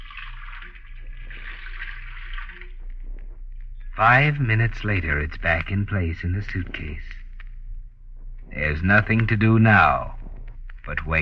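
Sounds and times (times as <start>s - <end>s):
faucet water running at a sink filling a container: 0.0s - 2.8s
low hum: 0.0s - 11.2s
speech: 4.0s - 7.1s, 8.5s - 10.2s, 10.9s - 11.2s.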